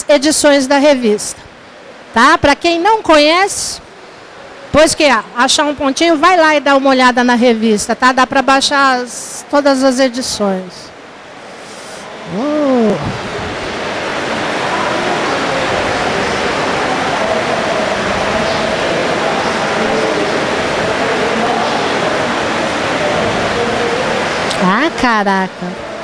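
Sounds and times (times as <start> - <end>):
heavy rain falling: 0.0 - 26.0
speech: 0.1 - 1.5, 2.1 - 3.8, 4.7 - 10.9, 12.3 - 13.2, 25.0 - 25.8
person exclaiming: 12.2 - 13.2.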